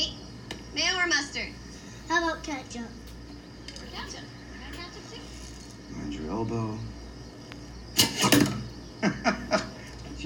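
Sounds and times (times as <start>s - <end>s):
speech: 1.0s - 3.0s, 6.0s - 6.9s
arrow released from a bow: 8.0s - 8.6s
laughter: 9.0s - 10.0s.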